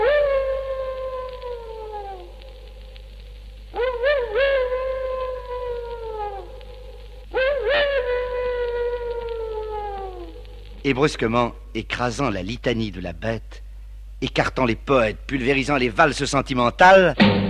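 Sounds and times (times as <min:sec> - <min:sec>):
distant dog howling in the countryside on a summer night: 0:00.0 - 0:02.8, 0:03.7 - 0:10.6
speech: 0:10.8 - 0:13.6, 0:14.2 - 0:17.4.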